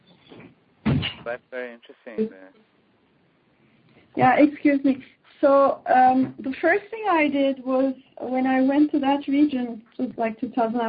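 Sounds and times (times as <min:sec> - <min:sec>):
door closing with a dull thud: 0:00.3 - 0:01.4
voices talking in the room: 0:01.0 - 0:02.6, 0:04.2 - 0:10.8
speech: 0:01.2 - 0:02.8, 0:04.1 - 0:10.8.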